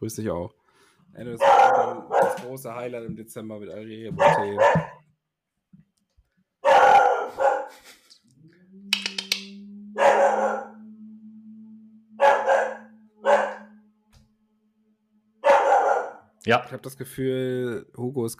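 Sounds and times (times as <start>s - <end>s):
speech: 0.0s - 5.0s, 16.5s - 18.3s
dog barking: 1.4s - 2.5s, 4.1s - 5.0s, 6.6s - 7.8s, 10.0s - 10.8s, 12.2s - 13.8s, 15.4s - 16.3s.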